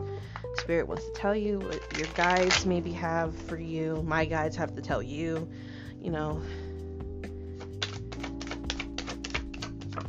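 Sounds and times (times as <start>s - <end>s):
speech: 0.7s - 6.6s
tarot cards being shuffled: 1.6s - 2.9s, 7.6s - 10.0s.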